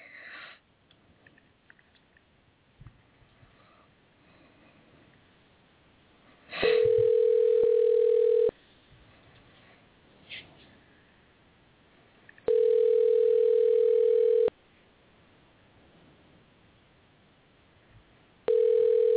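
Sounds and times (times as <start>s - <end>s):
telephone line tone as a call is dialed: 6.7s - 8.5s, 12.5s - 14.5s, 18.5s - 19.1s.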